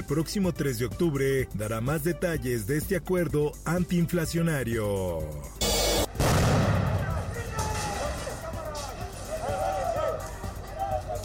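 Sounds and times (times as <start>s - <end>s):
speech: 0.0s - 5.6s
firecrackers exploding: 6.1s - 8.4s
crowd voices and shouts: 6.1s - 11.2s.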